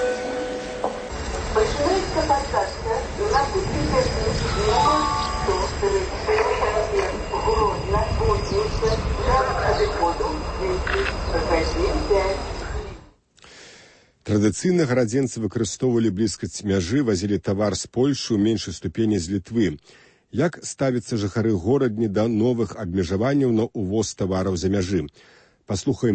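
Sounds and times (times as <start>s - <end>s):
low rumble of train and platform noise: 0.0s - 13.2s
public-address boarding announcement in a railway station: 1.1s - 13.0s
speech: 14.4s - 26.1s.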